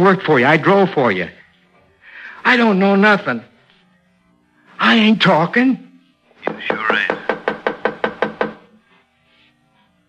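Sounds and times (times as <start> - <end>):
speech: 0.0 - 1.4, 2.4 - 3.5, 4.8 - 5.8
knocking on a wooden door: 6.4 - 8.7.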